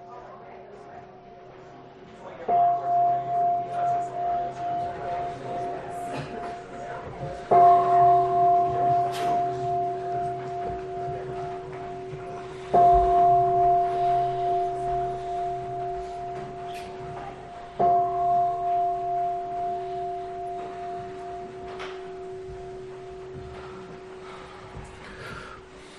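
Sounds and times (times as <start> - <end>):
big bell struck with deep resonant strikes: 2.2 - 25.9.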